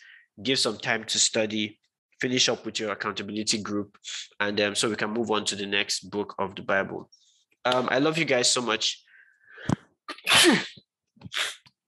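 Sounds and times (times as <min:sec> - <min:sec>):
speech: 0:00.4 - 0:11.6
person sneezing loudly: 0:10.1 - 0:11.6.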